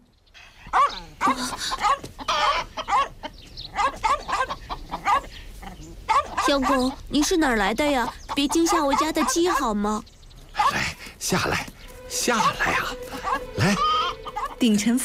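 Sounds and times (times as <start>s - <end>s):
agitated chickens squawking and clucking: 0.5s - 9.8s, 12.3s - 15.0s
small dog barking in quick yaps: 0.7s - 2.0s, 2.8s - 3.2s, 3.7s - 7.0s.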